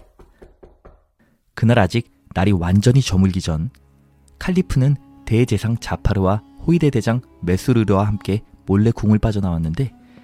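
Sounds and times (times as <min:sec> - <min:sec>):
soft hollow knocks on a door from outside: 0:00.0 - 0:01.2
speech: 0:01.6 - 0:03.8, 0:04.4 - 0:10.0.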